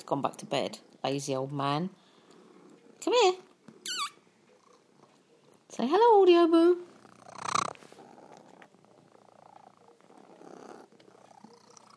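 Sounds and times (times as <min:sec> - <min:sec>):
speech: 0:00.0 - 0:02.0, 0:03.0 - 0:03.8, 0:05.7 - 0:06.9
cat purring: 0:02.0 - 0:05.5, 0:06.4 - 0:11.9.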